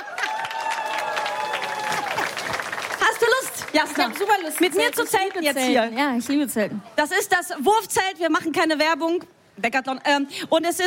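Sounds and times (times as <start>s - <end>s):
people cheering: 0.0s - 5.4s
audience applause: 0.0s - 5.8s
speech: 3.7s - 10.8s.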